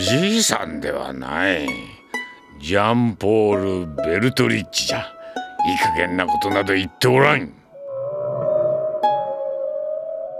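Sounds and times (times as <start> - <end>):
speech: 0.0 - 2.0, 2.6 - 7.6
whale calls from many whales gathering in the sea: 7.6 - 10.3.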